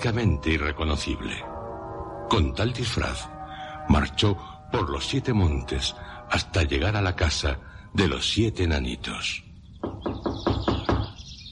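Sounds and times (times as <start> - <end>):
speech: 0.0 - 1.5, 2.3 - 3.3, 3.9 - 9.4
faint birdsong chirping: 0.0 - 11.5
woman knocking on a house door: 9.8 - 11.2.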